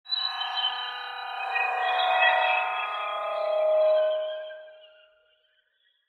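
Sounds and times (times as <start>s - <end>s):
sci-fi feedback swells: 0.1s - 5.0s.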